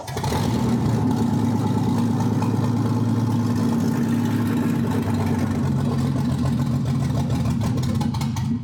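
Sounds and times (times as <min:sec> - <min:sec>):
small engine with no exhaust firing and sputtering: 0:00.0 - 0:08.6.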